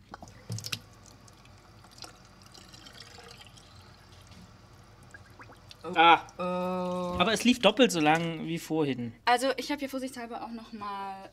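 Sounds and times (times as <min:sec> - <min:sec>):
water splashes and drips: 0:00.0 - 0:05.9
speech: 0:05.8 - 0:11.3.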